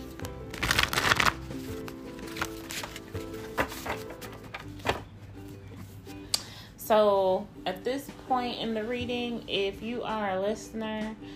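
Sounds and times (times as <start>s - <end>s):
deck of tarot cards being shuffled: 0.0s - 5.9s
speech: 6.9s - 11.3s.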